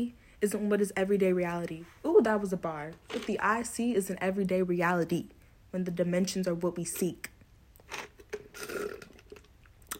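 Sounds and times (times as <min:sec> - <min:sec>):
speech: 0:00.0 - 0:07.3
person slurping tea: 0:07.8 - 0:09.9.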